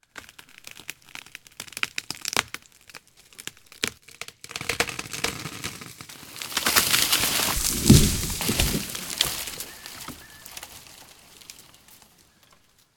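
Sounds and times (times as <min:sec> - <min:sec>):
tree falling: 0:05.0 - 0:12.7.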